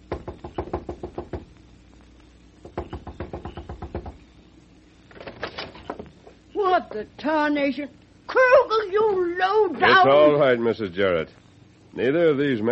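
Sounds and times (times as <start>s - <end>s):
knocking on the door of a boarding house: 0.0s - 1.6s, 2.6s - 4.2s
speech: 6.8s - 12.6s.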